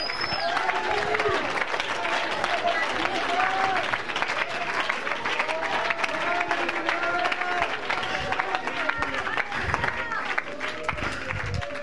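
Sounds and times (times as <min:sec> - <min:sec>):
large crowd clapping hands in praise: 0:00.0 - 0:11.8.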